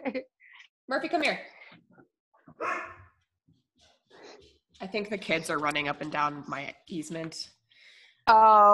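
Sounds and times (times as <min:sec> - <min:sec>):
speech: 0:00.0 - 0:00.3, 0:00.9 - 0:01.6, 0:04.4 - 0:07.6, 0:08.2 - 0:08.7
dog barking: 0:02.6 - 0:03.1.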